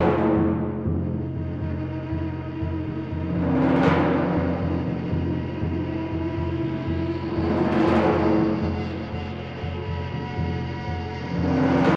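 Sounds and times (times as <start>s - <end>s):
percussion in game music intro: 0.0s - 11.9s.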